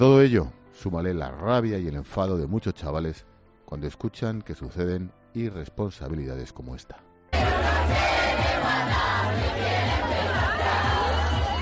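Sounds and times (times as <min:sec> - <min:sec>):
speech: 0:00.0 - 0:10.1
hundreds of young people partying on a university residence hall rooftop: 0:07.4 - 0:11.6
steady thumping low bass beat: 0:07.4 - 0:11.6.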